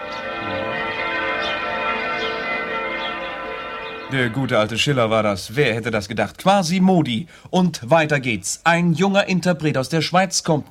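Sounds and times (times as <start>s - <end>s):
church bell ringing: 0.0s - 6.4s
speech: 4.1s - 10.6s.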